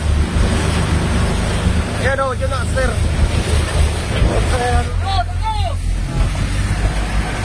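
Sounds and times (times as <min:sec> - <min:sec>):
rescue boat engine roar at sea: 0:00.0 - 0:07.4
sea: 0:00.0 - 0:07.4
wind at sea: 0:00.0 - 0:07.4
men shouting on rescue boats: 0:04.9 - 0:05.9.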